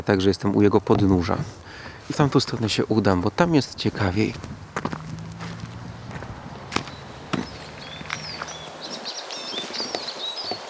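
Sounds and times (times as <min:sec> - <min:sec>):
speech: 0:00.0 - 0:04.6
crunching footsteps: 0:00.8 - 0:10.6
Eurasian siskins twittering: 0:02.8 - 0:10.6.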